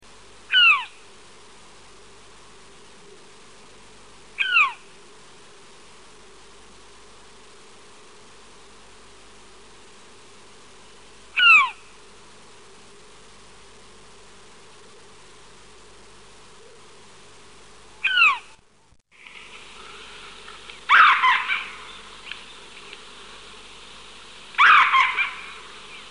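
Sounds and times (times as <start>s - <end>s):
Australian owlet-nightjar bird calls: 0.5s - 1.0s, 4.4s - 4.8s, 11.3s - 11.8s, 18.0s - 18.6s, 20.9s - 23.0s, 24.5s - 26.1s.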